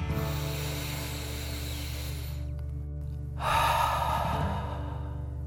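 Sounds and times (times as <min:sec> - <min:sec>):
forceful rush of air pushed out through the mouth in breathing exercise: 0:00.1 - 0:02.5, 0:03.4 - 0:05.2
breath drawn in through the nose in breath-of-fire breathing exercise: 0:00.1 - 0:02.6, 0:03.4 - 0:05.4.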